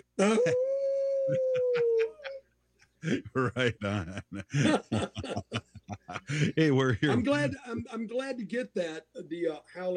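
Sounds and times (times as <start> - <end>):
speech: 0.2 - 0.7, 1.3 - 2.0, 3.0 - 9.9
person imitating a wolf with a long loud howl: 0.2 - 2.4
laughter: 0.2 - 7.9.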